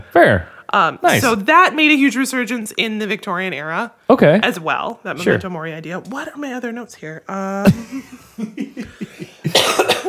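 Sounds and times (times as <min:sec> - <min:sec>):
speech: 0:00.2 - 0:10.0
laughter: 0:07.6 - 0:10.0
person coughing: 0:09.4 - 0:10.0.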